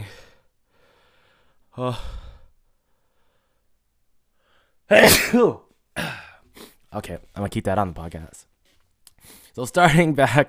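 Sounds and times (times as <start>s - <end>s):
speech: 1.8s - 2.2s, 4.9s - 6.2s, 6.9s - 8.5s, 9.2s - 10.4s
person sneezing: 4.9s - 6.8s.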